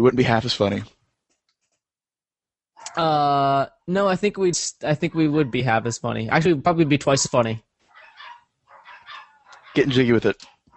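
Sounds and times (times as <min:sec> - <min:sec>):
speech: 0:00.0 - 0:01.0, 0:03.0 - 0:07.7, 0:09.8 - 0:10.5
dogs barking and yipping excitedly at the door: 0:02.8 - 0:03.0, 0:05.0 - 0:05.9, 0:07.8 - 0:10.0.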